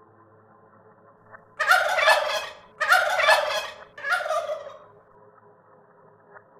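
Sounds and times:
turkey gobbling at a farm at dusk: 1.6 - 4.8.

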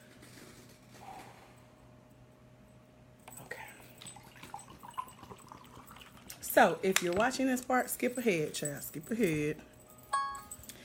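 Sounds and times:
water poured into a glass: 4.0 - 6.5
speech: 6.6 - 9.7.

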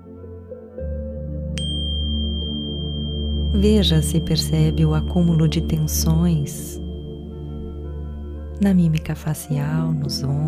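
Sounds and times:
low ambient drone: 1.6 - 8.6
meditation bell struck marking start of meditation: 1.6 - 8.6
speech: 3.6 - 6.8, 8.6 - 10.4.

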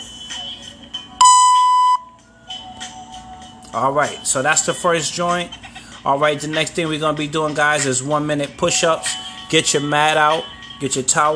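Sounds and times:
workout timer electronic beep: 1.2 - 2.1
speech: 3.8 - 11.3.

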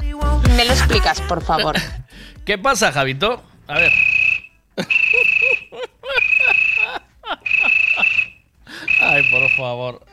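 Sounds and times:
speech: 0.6 - 4.1, 4.8 - 6.3, 9.0 - 10.1
cricket chirping in high-pitched trills: 3.7 - 9.8
lower warbling croaky calls: 3.8 - 9.7
laughter: 4.8 - 9.6.

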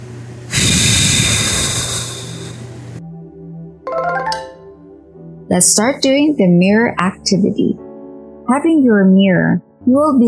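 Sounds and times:
long deep exhale out through the mouth: 0.5 - 2.7
soft sustained music: 3.0 - 10.2
speech: 5.5 - 7.9, 8.5 - 10.2.

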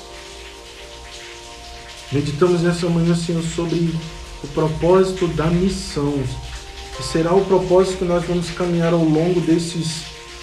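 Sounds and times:
steady rain pattering on a surface: 0.0 - 10.4
speech: 2.1 - 10.1.

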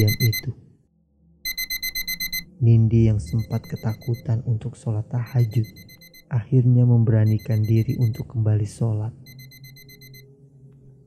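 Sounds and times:
speech: 0.0 - 0.2, 2.6 - 9.2
alarm clock ringing in rapid electronic beeps: 0.0 - 0.4, 1.5 - 2.5, 3.2 - 4.3, 5.3 - 6.3, 7.2 - 8.3, 9.3 - 10.2.

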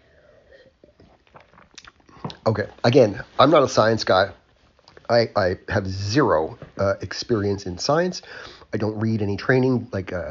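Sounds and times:
slightly louder gulp: 0.4 - 2.6
sipping wine from a glass: 0.4 - 2.8
brief slurping clicks of mouth: 0.8 - 2.6
speech: 2.4 - 4.4, 5.1 - 10.2.

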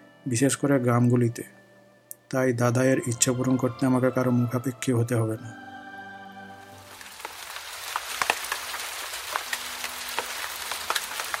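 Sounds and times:
speech: 0.2 - 1.6, 2.3 - 5.7
steady rain falling on a surface outdoors in a rural village area: 6.8 - 11.3.

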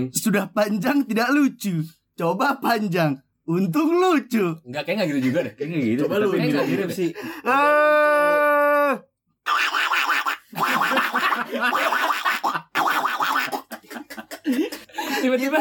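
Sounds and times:
speech: 0.0 - 9.8, 11.5 - 12.1, 15.2 - 15.5
person imitating a duck call: 7.5 - 13.7
raspy laughter-like bursts: 9.5 - 14.9.

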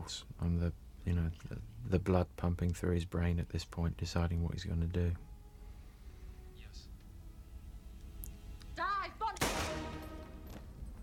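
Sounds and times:
speech: 0.0 - 5.3
gunshot in a film scene: 9.4 - 10.5.

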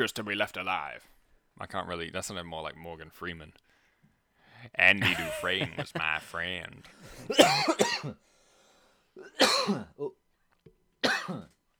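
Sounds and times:
speech: 0.0 - 3.7, 4.6 - 8.3, 9.2 - 10.2
person coughing with harsh hacking bursts: 7.1 - 8.2, 9.2 - 10.2, 11.0 - 11.6.

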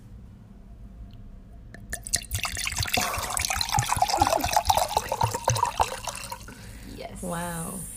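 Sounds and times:
wine pouring into a glass: 1.8 - 6.7.

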